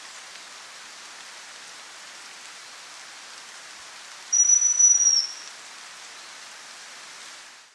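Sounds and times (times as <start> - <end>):
soft steady hiss: 0.0 - 7.7
chestnut-belted chat-tyrant giving a high thin whistle: 4.3 - 5.5.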